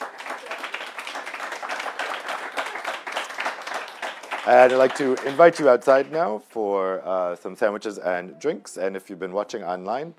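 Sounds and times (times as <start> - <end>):
audience applauding for panelists: 0.0 - 6.3
speech: 4.5 - 10.1.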